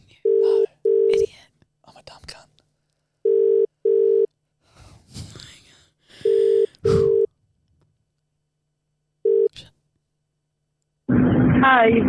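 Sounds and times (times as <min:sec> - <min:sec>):
phone line ringback tone on an outgoing call: 0:00.3 - 0:01.2, 0:03.2 - 0:04.3, 0:06.2 - 0:07.3, 0:09.2 - 0:09.5
person breathing: 0:04.6 - 0:07.3
speech: 0:11.8 - 0:12.0.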